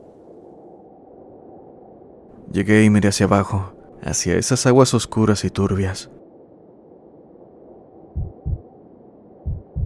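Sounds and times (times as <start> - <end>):
faint dark rumble: 0.0 - 9.8
speech: 2.5 - 6.2
deep heartbeat: 8.1 - 8.7, 9.4 - 9.8.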